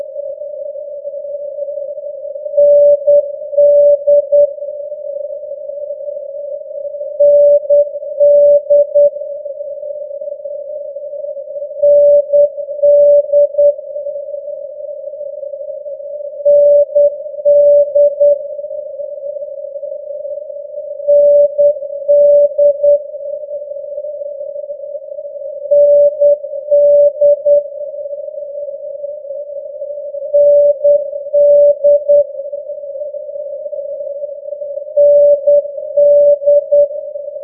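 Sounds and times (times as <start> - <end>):
NDB radio beacon morse code tones: 2.6 - 4.5, 7.2 - 9.1, 11.8 - 13.7, 16.5 - 18.3, 21.1 - 23.0, 25.7 - 27.6, 30.3 - 32.2, 35.0 - 36.9.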